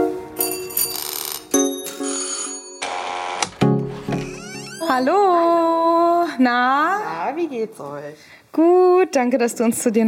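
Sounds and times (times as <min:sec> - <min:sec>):
bright electronic doorbell chiming: 0:00.4 - 0:03.4
speech: 0:04.9 - 0:05.7, 0:06.4 - 0:10.0.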